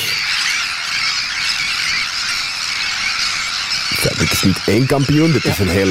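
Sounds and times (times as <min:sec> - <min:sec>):
dense colony of Arctic terns calling: 0:00.0 - 0:05.8
speech: 0:04.4 - 0:05.8.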